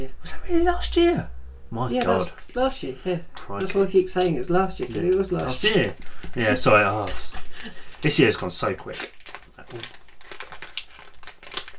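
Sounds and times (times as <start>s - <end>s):
speech: 0.0s - 10.0s
wrapping paper on a present crinkling and rustling: 3.6s - 11.7s.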